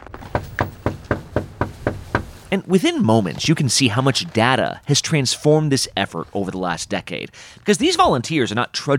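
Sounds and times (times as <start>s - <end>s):
knocking on a front door: 0.2s - 2.4s
speech: 2.5s - 8.9s.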